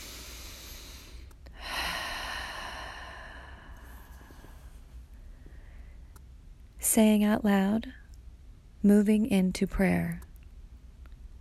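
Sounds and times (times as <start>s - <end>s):
deep breath taken during a guided prayer: 0.0s - 6.1s
steady low hum: 0.0s - 11.3s
speech: 6.9s - 8.0s, 8.8s - 10.3s.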